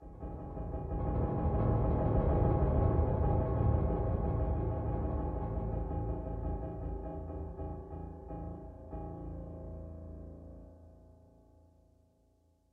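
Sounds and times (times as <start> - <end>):
piano in a cave: 0.0 - 12.2.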